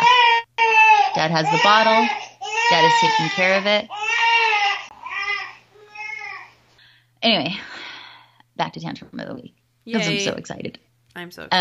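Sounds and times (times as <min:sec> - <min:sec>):
newborn baby crying: 0:00.0 - 0:06.6
faint low hum: 0:00.0 - 0:11.5
speech: 0:01.2 - 0:04.0, 0:07.2 - 0:07.7, 0:08.6 - 0:11.5.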